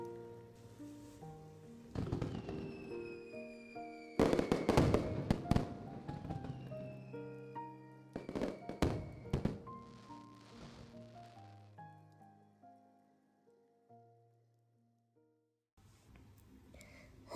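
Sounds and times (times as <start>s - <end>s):
fireworks exploding: 1.8s - 11.8s.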